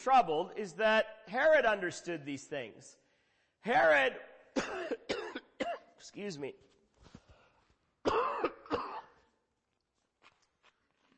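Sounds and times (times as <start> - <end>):
speech: 0.0 - 3.0, 3.6 - 5.1, 6.0 - 6.7
loud raspy throat clearing: 4.6 - 5.9, 8.0 - 9.3.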